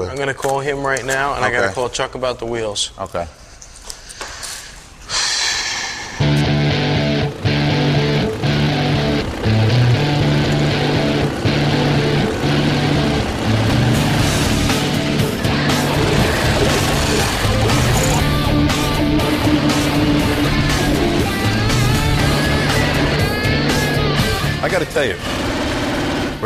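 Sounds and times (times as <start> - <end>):
speech: 0.1 - 3.4
old-school chopper motorcycle engine running: 6.2 - 26.4.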